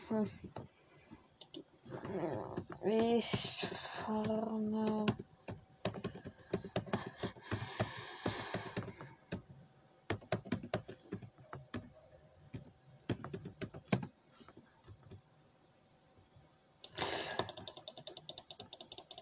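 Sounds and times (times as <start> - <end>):
speech: 0.1 - 0.7, 2.1 - 5.3
fast typing on a computer keyboard during a game: 1.4 - 9.5, 10.1 - 11.9, 12.5 - 14.1, 16.9 - 19.1.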